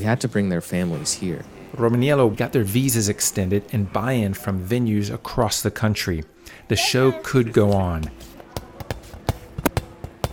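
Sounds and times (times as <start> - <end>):
speech: 0.0 - 8.3
dodgeball thumping against a hard floor: 8.0 - 10.3.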